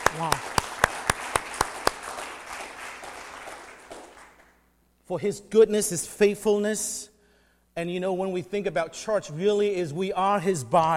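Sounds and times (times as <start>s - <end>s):
audience applause: 0.0s - 4.5s
speech: 0.1s - 0.6s, 5.1s - 7.1s, 7.8s - 10.9s.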